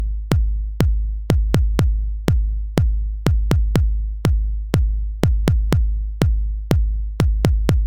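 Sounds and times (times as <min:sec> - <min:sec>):
house lo-fi punchy clinky kick drum loop: 0:00.0 - 0:07.8.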